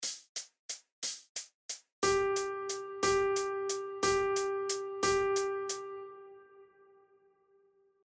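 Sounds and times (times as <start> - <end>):
dotted quarter note rhythm in triple time: 2.0 - 6.1.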